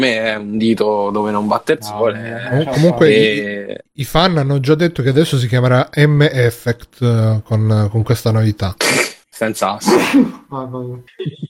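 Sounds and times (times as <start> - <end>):
speech: 0.0 - 11.4
person sneezing: 8.8 - 9.2, 9.8 - 10.5
laughter: 11.1 - 11.4.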